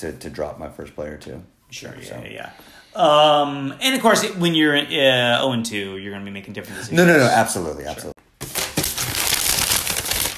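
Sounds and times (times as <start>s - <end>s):
speech: 0.0s - 8.1s
sheet of paper used for a tally being crumpled: 8.4s - 10.3s.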